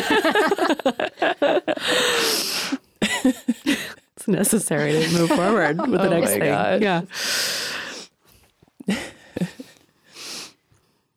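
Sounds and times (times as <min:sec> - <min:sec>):
laughter: 0:00.0 - 0:02.2, 0:04.8 - 0:06.6
speech: 0:00.1 - 0:02.5, 0:04.3 - 0:07.5, 0:08.9 - 0:09.5
person blowing their nose: 0:02.0 - 0:02.8, 0:10.1 - 0:10.6.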